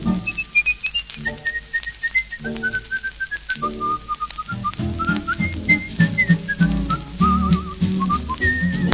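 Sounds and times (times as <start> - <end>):
steady instrumental accompaniment: 0.0 - 8.9
person whistling a lively melody: 0.2 - 8.9.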